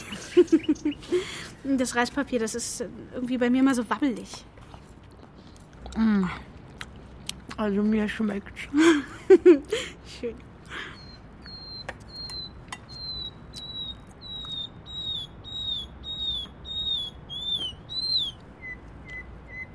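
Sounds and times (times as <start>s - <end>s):
nightingale singing: 0.0s - 1.2s, 11.0s - 19.7s
faint hum: 0.0s - 19.7s
speech: 0.4s - 4.6s, 6.0s - 6.5s, 7.6s - 10.9s
sharp chirps: 11.4s - 19.7s.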